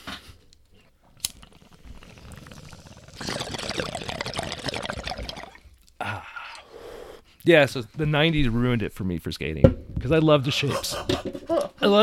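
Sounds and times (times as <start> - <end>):
bong water bubbling and gurgling during a hit: 0.8 - 5.8
speech: 7.4 - 12.0.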